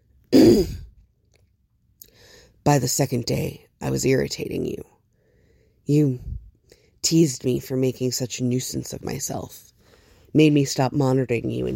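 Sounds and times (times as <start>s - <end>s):
man clearing throat: 0.4s - 0.9s
speech: 2.6s - 5.0s, 5.9s - 6.4s, 7.0s - 9.7s, 10.3s - 11.7s.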